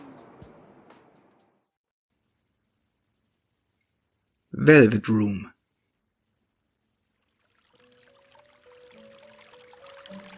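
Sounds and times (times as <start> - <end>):
speech: 4.6 - 5.5
gentle splashing trickle of water: 6.8 - 10.3
gentle melody of sustained tones: 7.5 - 10.3.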